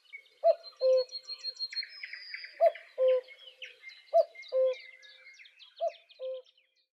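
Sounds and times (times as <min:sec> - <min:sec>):
songbirds chirping: 0:00.0 - 0:06.9
cuckoo calling its two-note cu-coo: 0:00.4 - 0:01.2, 0:02.4 - 0:03.4, 0:04.2 - 0:04.9, 0:05.8 - 0:06.4.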